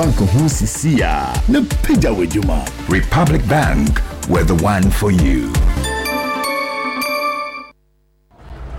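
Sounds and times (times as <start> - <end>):
speech: 0.0 - 5.7
phone notification alert tones: 5.8 - 7.8.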